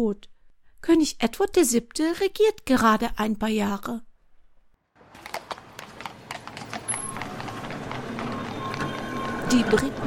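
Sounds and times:
speech: 0:00.0 - 0:04.1, 0:09.5 - 0:10.0
busy murmur of traffic including cars in London: 0:04.9 - 0:10.0
horse-drawn carriage hooves clip-clopping on a hard street in London: 0:05.0 - 0:10.0.

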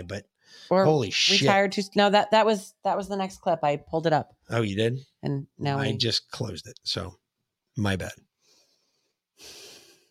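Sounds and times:
speech: 0:00.0 - 0:07.2, 0:07.8 - 0:08.3, 0:09.4 - 0:09.6
loud forceful breath pushed out through the nose: 0:08.4 - 0:10.0.

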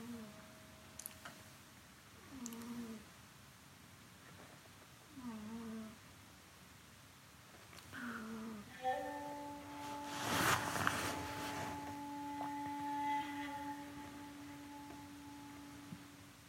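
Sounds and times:
low hiss: 0:00.0 - 0:16.4
cat snoring: 0:02.3 - 0:03.0, 0:05.1 - 0:06.0, 0:08.0 - 0:08.7.

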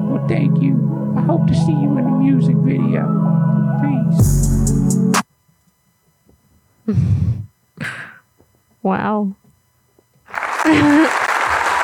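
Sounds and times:
speech: 0:00.3 - 0:04.8, 0:06.9 - 0:07.4, 0:08.8 - 0:09.4, 0:10.6 - 0:11.2
audience applause: 0:10.3 - 0:11.8.

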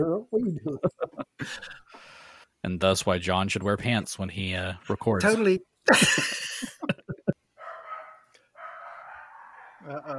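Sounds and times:
speech: 0:00.0 - 0:06.7, 0:09.8 - 0:10.1
laughter: 0:00.6 - 0:01.8, 0:05.9 - 0:07.4, 0:09.8 - 0:10.1
small dog barking and yipping: 0:07.6 - 0:09.8.

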